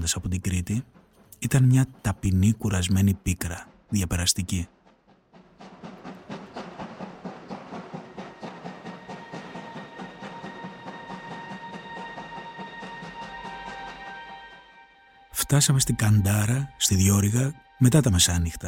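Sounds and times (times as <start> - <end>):
speech: 0.0 - 4.8, 15.5 - 18.6
train rolling along rails, wheels clickety-clack: 0.0 - 14.6.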